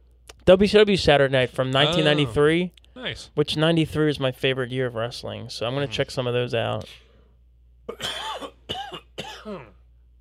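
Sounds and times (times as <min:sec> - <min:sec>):
speech: 0:00.5 - 0:07.0, 0:07.9 - 0:08.5
harsh raspy coughs: 0:07.9 - 0:09.9.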